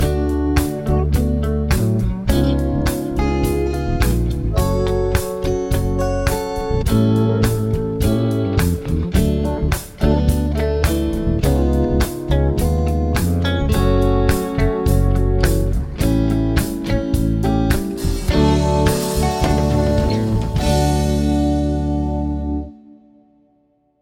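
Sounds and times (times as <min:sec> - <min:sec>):
chord progressions with applied chords: 0:00.0 - 0:23.8.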